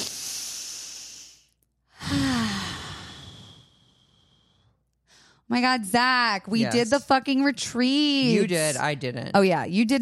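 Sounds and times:
deep cleansing breath with long inhale and sighing exhale: 0.0 - 5.5
speech: 5.5 - 10.0.

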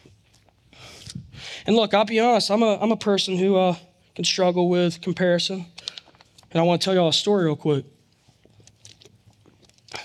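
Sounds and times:
person sipping water: 0.0 - 1.4, 8.1 - 10.0
speech: 1.6 - 5.8, 6.5 - 8.0.

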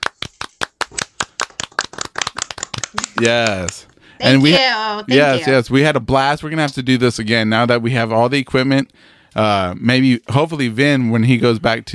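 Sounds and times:
one or two people clapping: 0.0 - 5.5
speech: 2.9 - 11.9.

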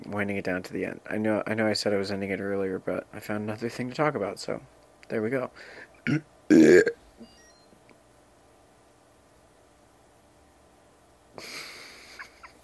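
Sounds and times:
speech: 0.1 - 7.0
loud burp: 6.1 - 7.0.

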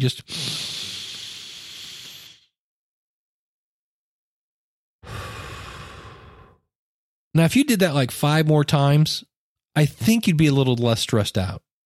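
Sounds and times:
speech: 0.0 - 0.6, 7.4 - 11.7
deep breath drawn in: 0.3 - 2.5, 5.0 - 6.7.

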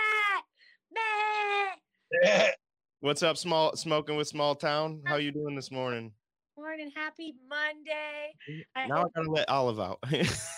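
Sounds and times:
person imitating a goat bleating: 1.0 - 2.6, 5.1 - 5.6, 8.5 - 9.5
speech: 2.2 - 6.2, 6.8 - 10.5
laughter: 5.1 - 5.8, 8.5 - 10.5.

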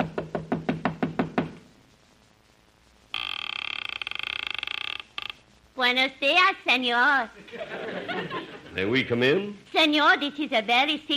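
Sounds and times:
knocking on a wooden door: 0.0 - 1.6
speech: 5.8 - 11.1
laughter: 7.4 - 9.0.

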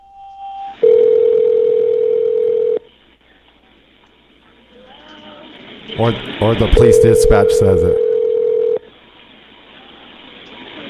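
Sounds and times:
electronic phone ring tone over a telephone line on a recorded emergency call: 0.0 - 2.8, 6.7 - 8.9
speech: 6.0 - 8.0.

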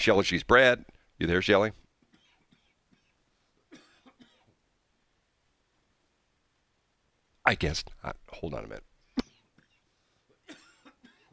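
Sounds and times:
speech: 0.0 - 1.8, 7.5 - 8.9
short harsh coughs: 2.1 - 4.5, 10.4 - 11.3.

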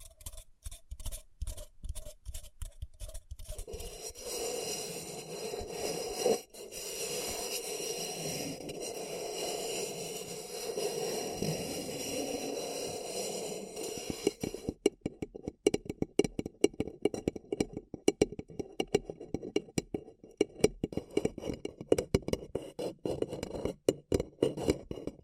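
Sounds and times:
paper cup rubbing scrape: 0.0 - 14.8, 20.5 - 25.2
paper cup sharp taps and scratches: 0.0 - 25.2.

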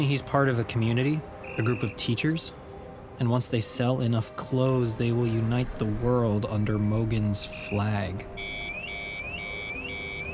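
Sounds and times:
speech: 0.0 - 2.6, 3.2 - 8.6
electronic alarm wailing with upward sweeping high tone: 8.4 - 10.3.

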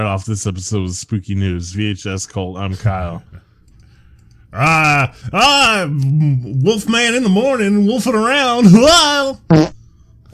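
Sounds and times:
speech: 0.0 - 3.5, 4.5 - 9.7
loud buzzy fart noises: 9.4 - 9.8.

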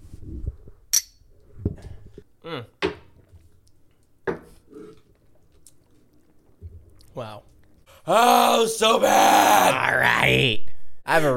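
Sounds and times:
glasses clinking together in a toast: 0.9 - 1.2
speech: 2.5 - 2.8, 8.1 - 11.3.

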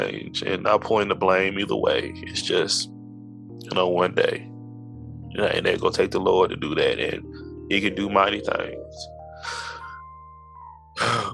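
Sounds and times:
speech: 0.0 - 3.0, 3.6 - 4.5, 5.4 - 9.6, 11.0 - 11.3
heavy breathing into the microphone: 9.3 - 10.1.

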